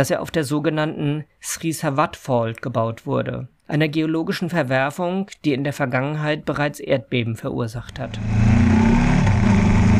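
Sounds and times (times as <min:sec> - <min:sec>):
speech: 0:00.0 - 0:08.6
motorcycle engine revving while ridden up onto the Sinakarin Dam crest in Thailand: 0:08.0 - 0:09.9.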